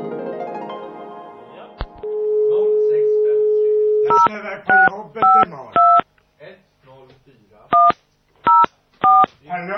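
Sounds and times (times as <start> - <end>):
telephone dial tone: 2.0 - 4.1
old push-button telephone DTMF dialing beeps: 3.9 - 6.0, 7.8 - 9.3.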